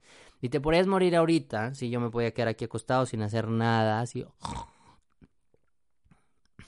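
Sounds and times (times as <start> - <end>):
speech: 0.4 - 4.8
person faking a snore: 4.4 - 4.9
person making breathy sputtering choking sounds and gasping: 4.4 - 5.0.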